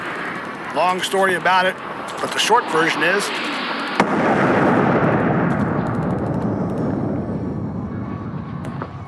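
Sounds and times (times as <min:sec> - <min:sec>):
roaring rumble after explosion: 0:00.0 - 0:09.0
scattered crackles: 0:00.0 - 0:09.0
speech: 0:00.8 - 0:04.2
loud explosion of explosive hidden inside a phone: 0:01.8 - 0:09.0.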